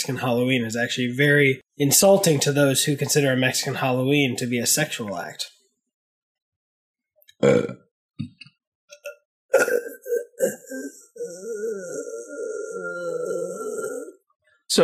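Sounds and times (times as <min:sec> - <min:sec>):
speech: 0:00.0 - 0:05.6, 0:07.4 - 0:08.5, 0:09.5 - 0:13.9
small burp: 0:07.3 - 0:14.2
low croaking belch: 0:07.4 - 0:14.1.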